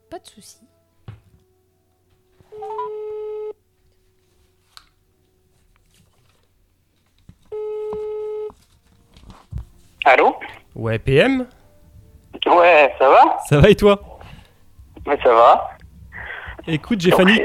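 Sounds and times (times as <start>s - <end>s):
speech: 0.1s - 0.8s, 10.1s - 11.6s, 12.5s - 14.1s, 15.1s - 15.7s, 16.7s - 17.4s
quiet telephone line hiss: 2.5s - 3.6s
telephone ringback tone as a call is placed: 2.5s - 3.6s, 7.5s - 8.6s.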